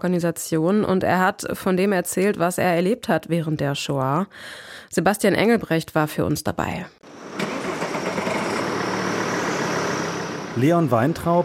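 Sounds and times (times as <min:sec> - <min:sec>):
speech: 0:00.0 - 0:07.2, 0:10.6 - 0:11.4
car engine starting: 0:07.0 - 0:11.4.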